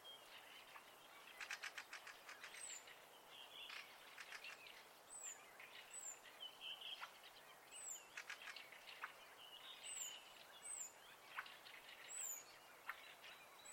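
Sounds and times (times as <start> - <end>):
birds calling and singing at night in spring: 0.0 - 13.7
constant background hiss: 0.0 - 13.7.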